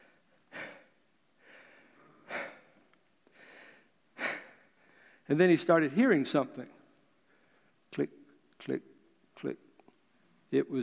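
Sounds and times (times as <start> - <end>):
heavy breathing of person catching breath lying down after exertion: 0.0 - 5.3
speech: 5.3 - 6.8, 8.0 - 9.6, 10.5 - 10.8.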